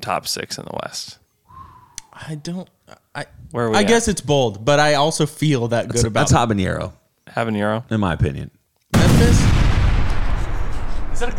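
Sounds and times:
speech: 0:00.0 - 0:01.2, 0:02.2 - 0:09.6, 0:11.2 - 0:11.3
explosion sound effect with deep low rumble and roar: 0:09.0 - 0:11.3.

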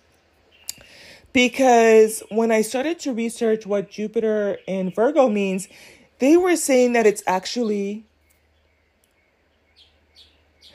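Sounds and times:
birds chirping outdoors in good weather: 0:00.0 - 0:10.7
speech: 0:01.3 - 0:08.1.

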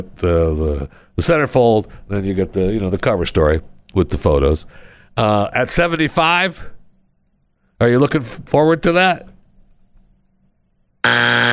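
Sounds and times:
speech: 0:00.0 - 0:06.8, 0:07.8 - 0:09.3, 0:11.0 - 0:11.5
harsh electronic buzzer: 0:11.0 - 0:11.5.

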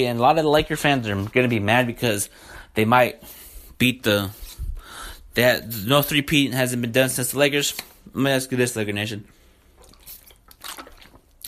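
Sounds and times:
speech: 0:00.0 - 0:04.4, 0:05.4 - 0:09.4
person drinking water with gulps and swallows: 0:09.7 - 0:11.4.

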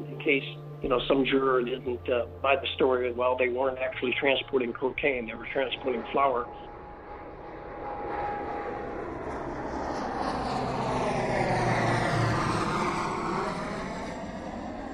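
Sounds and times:
faint sweeping whine: 0:00.0 - 0:12.0
airplane engines roaring while landing: 0:00.0 - 0:14.9
speech: 0:00.2 - 0:06.7.

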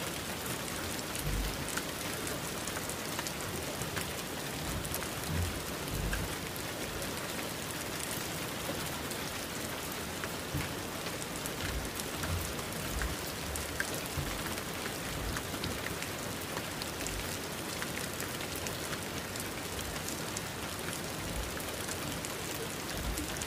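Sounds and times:
steady heavy rain: 0:00.0 - 0:23.4
soft low rumble: 0:04.7 - 0:06.4.

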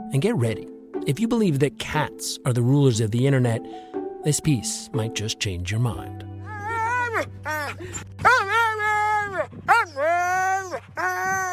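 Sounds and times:
speech: 0:00.1 - 0:06.6, 0:07.2 - 0:08.8
husky sled dog howling and whining: 0:06.5 - 0:11.5.

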